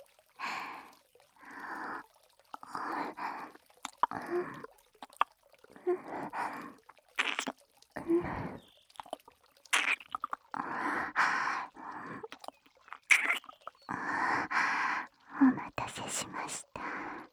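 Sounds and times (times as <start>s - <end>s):
wet ear-licking mouth sounds: 2.5s - 7.6s, 8.5s - 14.9s, 15.6s - 17.3s
mouth smacks and clicks: 3.8s - 5.4s, 6.2s - 7.6s, 8.4s - 14.5s, 15.5s - 17.3s.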